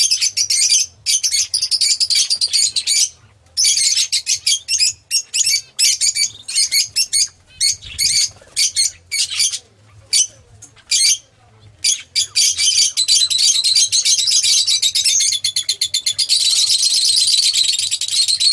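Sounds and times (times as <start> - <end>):
Oriental magpie-robin singing: 0.0 - 18.5.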